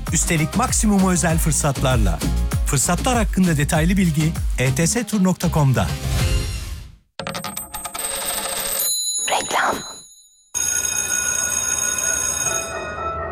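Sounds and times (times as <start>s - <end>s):
speech: 0.1s - 6.2s
school bell ringing in long buzzing metallic bursts: 8.8s - 13.2s.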